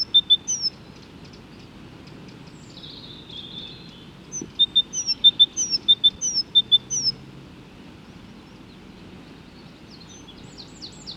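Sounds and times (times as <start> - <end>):
great tit Parus major singing high-low phrases: 0.0 - 0.8, 4.3 - 7.2.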